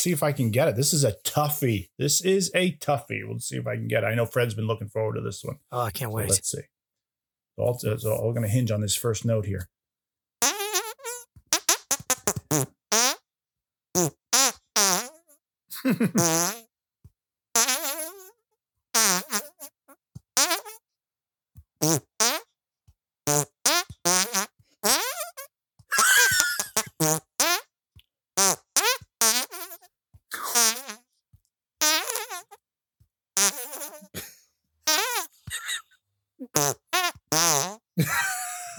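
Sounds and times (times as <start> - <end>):
speech: 0.0 - 6.8, 7.6 - 9.8, 12.5 - 13.0, 14.0 - 14.2, 15.8 - 16.7
yodeling tune played as hand farts: 10.4 - 13.2, 14.0 - 15.4, 16.2 - 16.7, 17.6 - 18.4, 19.0 - 19.8, 20.4 - 20.8, 21.8 - 22.5, 23.3 - 27.7, 28.4 - 31.0, 31.8 - 32.6, 33.4 - 34.2, 34.9 - 35.8, 36.4 - 38.7
laughter: 15.7 - 16.2, 25.9 - 26.9, 35.5 - 35.9, 38.0 - 38.7.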